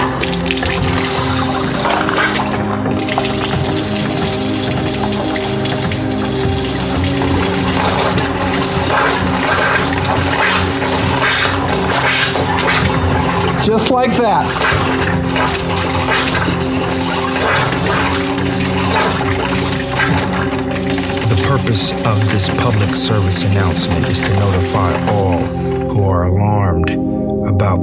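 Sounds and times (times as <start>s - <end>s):
methane igniting from a kitchen match: 0.0s - 25.8s
tap water carrying methane gushing: 0.0s - 26.0s
speech: 13.7s - 14.8s, 21.7s - 27.8s.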